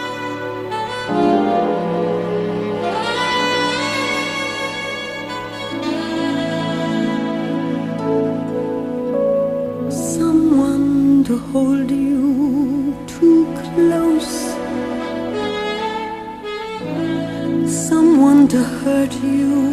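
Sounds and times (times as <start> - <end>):
full orchestral accompaniment: 0.0 - 18.6
speech: 1.1 - 1.3
female vocalist singing a Broadway show tune: 9.8 - 15.1, 16.8 - 19.7.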